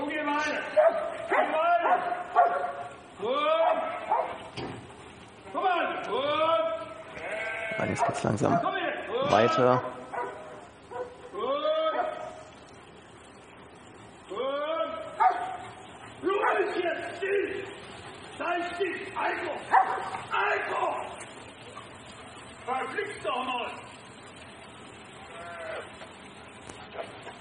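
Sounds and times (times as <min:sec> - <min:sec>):
steady outdoor hiss: 0:00.0 - 0:27.3
white dog barking and whimpering with high whining yelps: 0:00.8 - 0:02.9, 0:03.6 - 0:04.4, 0:09.8 - 0:11.2, 0:15.2 - 0:15.8, 0:19.7 - 0:20.2
speech: 0:07.8 - 0:10.0.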